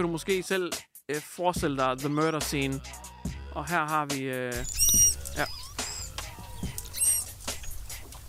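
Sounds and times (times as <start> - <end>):
speech: 0.0 - 5.6
manatee calls, high-pitched squeaks and chirps: 4.6 - 7.8.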